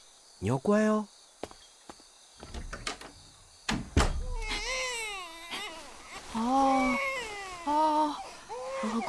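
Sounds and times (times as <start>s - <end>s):
speech: 0.4s - 1.2s
infant crying in a thin wavering wail: 4.2s - 9.0s.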